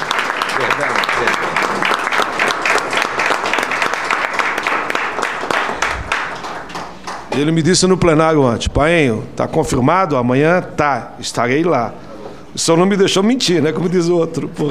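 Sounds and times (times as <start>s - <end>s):
crowd applauding for a senator: 0.0s - 7.7s
speech: 7.4s - 12.0s, 12.6s - 14.6s.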